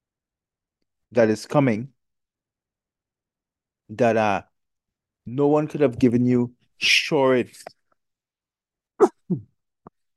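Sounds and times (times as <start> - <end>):
speech: 1.1 - 2.0, 3.9 - 4.5, 5.3 - 7.8, 9.0 - 9.5
person sneezing: 9.0 - 9.5.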